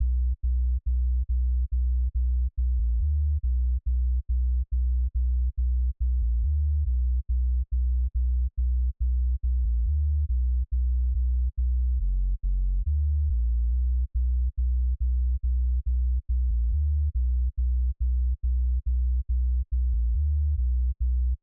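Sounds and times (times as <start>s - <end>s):
dub sub bass: 0.0s - 21.4s.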